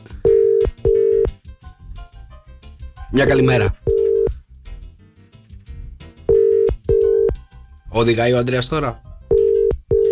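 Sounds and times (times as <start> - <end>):
faint music: 0.0 - 10.1
telephone ringback tone: 0.2 - 1.3, 3.9 - 4.3, 6.3 - 7.4, 9.3 - 10.1
speech: 3.1 - 3.8, 7.9 - 9.1.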